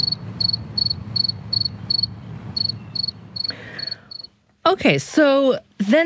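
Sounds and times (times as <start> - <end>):
low rumbling background: 0.0 - 4.3
modern-day cricket chirping: 0.0 - 4.3
speech: 4.7 - 6.0.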